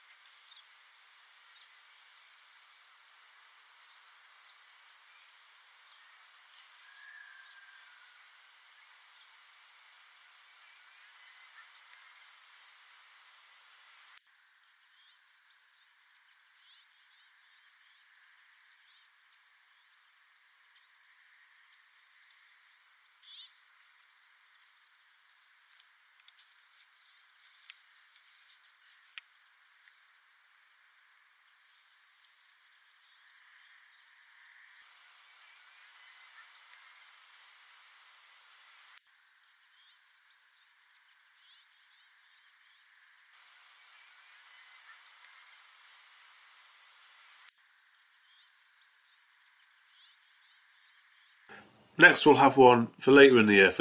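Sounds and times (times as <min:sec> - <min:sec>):
steady hiss: 0:00.0 - 0:53.8
blackbird and redwing calls: 0:01.4 - 0:01.9, 0:03.8 - 0:09.3, 0:10.5 - 0:12.7, 0:22.0 - 0:22.5, 0:25.8 - 0:30.5, 0:31.6 - 0:37.5, 0:40.8 - 0:42.9, 0:43.8 - 0:46.0, 0:49.4 - 0:51.5
soft ticks: 0:29.1 - 0:30.0
speech: 0:52.0 - 0:53.8.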